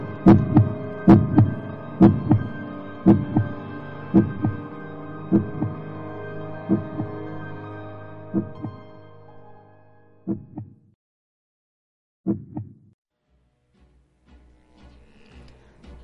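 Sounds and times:
heavy booming heartbeat sound effect: 0.3 - 3.6, 4.2 - 4.6, 5.3 - 5.8, 6.7 - 7.2, 8.4 - 8.8, 10.3 - 10.8, 12.3 - 12.9.

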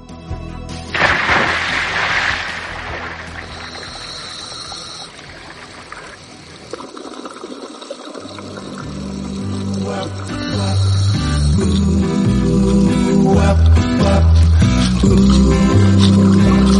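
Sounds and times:
diver splashing into the sea: 0.9 - 6.6
rushing bubbling water wash: 1.0 - 10.5
underwater churning and trickling: 1.0 - 16.7.

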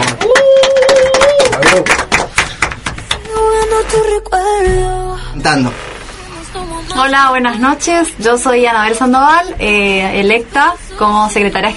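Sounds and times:
audience applauding: 0.0 - 3.2
sustained musical tones: 3.3 - 8.3
speech: 5.4 - 5.8, 7.0 - 11.7.

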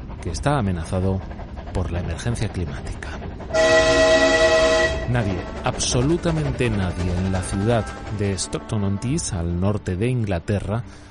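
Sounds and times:
low rumble: 0.0 - 8.8
speech: 0.2 - 4.4, 5.1 - 11.0
locomotive horn blaring: 3.5 - 5.6.

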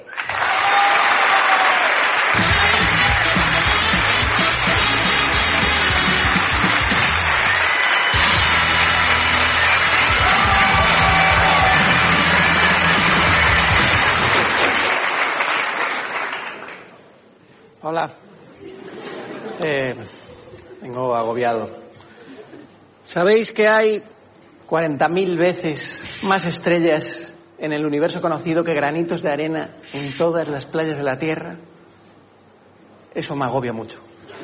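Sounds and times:
cheers, whoops and shouts: 0.1 - 17.0
applause from a large audience: 0.1 - 17.1
laughter: 18.5 - 20.5
speech: 23.1 - 24.1, 24.7 - 31.7, 33.1 - 34.1.

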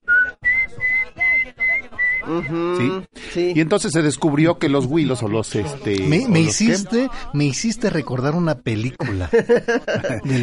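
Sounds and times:
person whistling an imitation of turkey poults peeping: 0.0 - 2.8
laughter: 0.4 - 2.6, 9.0 - 10.4
speech: 2.3 - 10.4.

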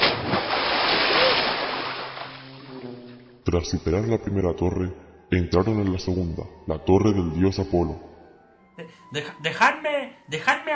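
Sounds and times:
frothy wash of churning water: 0.0 - 3.2
speech: 3.4 - 8.1, 8.8 - 10.7.

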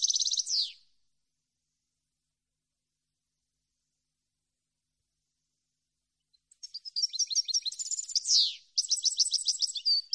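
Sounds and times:
European goldfinch song of tinkling chatter and falling slur: 0.0 - 0.9, 6.2 - 10.1.

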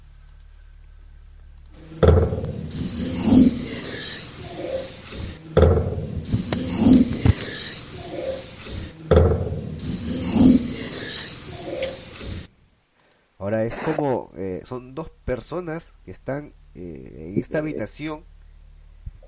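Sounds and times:
steady hiss: 0.0 - 19.2
door slamming: 2.0 - 3.5, 5.2 - 7.4
speech: 14.7 - 18.3.

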